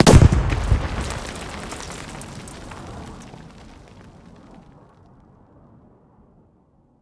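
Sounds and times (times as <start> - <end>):
close explosions: 0.0 - 3.9.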